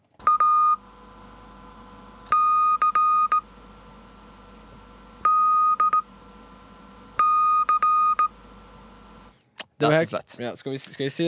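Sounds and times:
Morse code beeps spelling out letters: 0.2 - 0.9, 2.3 - 3.6, 5.2 - 6.1, 7.2 - 8.4
speech: 9.8 - 11.2.

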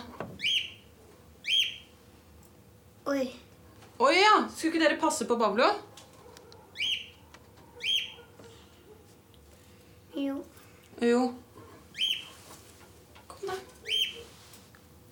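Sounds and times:
pet bird chirping and whistling in a bathroom: 0.4 - 2.0, 6.7 - 7.2, 7.8 - 8.2, 11.9 - 12.4, 13.8 - 14.2
speech: 3.1 - 3.4, 4.0 - 5.9, 11.0 - 11.4.

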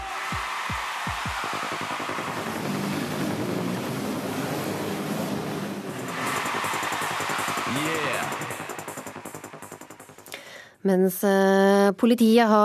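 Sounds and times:
jet ski engines revving on water: 1.9 - 8.5
speech: 10.8 - 12.6.

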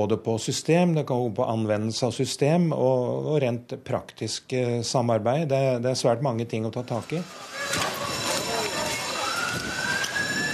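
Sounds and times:
speech: 0.0 - 7.9
ambulance siren wailing at the government quarter: 7.0 - 10.5
voices: 7.2 - 10.4.

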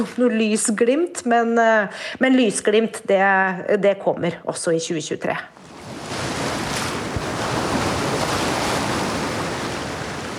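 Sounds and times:
speech: 0.0 - 5.6
South China Sea waves crashing on the shore of Hainan Island: 5.6 - 10.3.

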